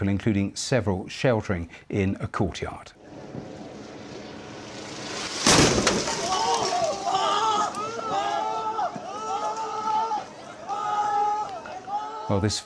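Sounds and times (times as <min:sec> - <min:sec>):
speech: 0:00.0 - 0:03.6, 0:12.3 - 0:12.6
loud explosion: 0:03.0 - 0:06.5
people screaming and wailing: 0:05.8 - 0:12.6
panicked shouting: 0:06.1 - 0:12.6.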